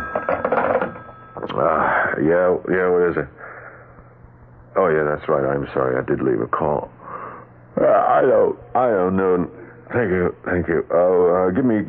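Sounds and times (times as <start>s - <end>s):
telephone ringing with a rapid trilling bell: 0.0s - 1.7s
speech: 1.6s - 3.4s, 4.8s - 7.0s, 7.8s - 11.8s.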